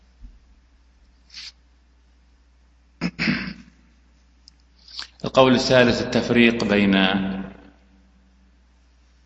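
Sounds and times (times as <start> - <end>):
sneeze: 3.0 - 3.8
speech: 5.3 - 7.4.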